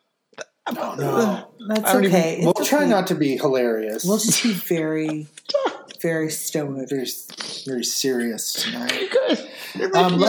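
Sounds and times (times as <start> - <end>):
person coughing: 0.6 - 1.3, 4.2 - 6.0, 8.6 - 10.0
speech: 0.7 - 10.2.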